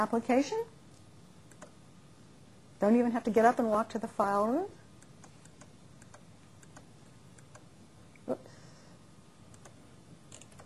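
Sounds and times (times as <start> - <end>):
speech: 0.0 - 0.8, 2.8 - 4.8
faint hum: 0.0 - 10.6
computer mouse clicking: 1.5 - 1.8, 5.0 - 7.7, 9.5 - 10.6.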